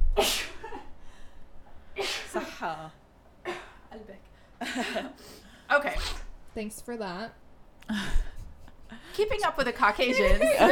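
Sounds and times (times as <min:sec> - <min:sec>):
person sneezing: 0:00.2 - 0:00.9, 0:02.0 - 0:02.6
speech: 0:02.3 - 0:03.0, 0:03.9 - 0:08.3, 0:08.9 - 0:10.7
laughter: 0:10.0 - 0:10.7.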